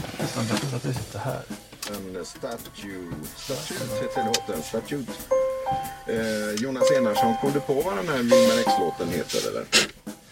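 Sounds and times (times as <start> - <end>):
speech: 0.4 - 10.0
car seatbelt reminder chime at startup: 3.9 - 9.5.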